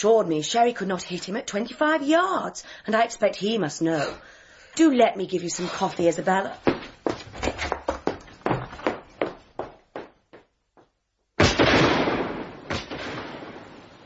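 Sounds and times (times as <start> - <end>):
speech: 0.0 - 7.7
pistol shot fired into the air during a duel: 11.4 - 13.8.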